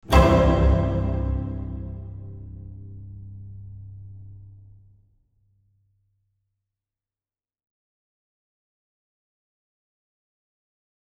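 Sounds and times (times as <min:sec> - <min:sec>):
space-themed orchestral cadence: 0:00.0 - 0:04.7.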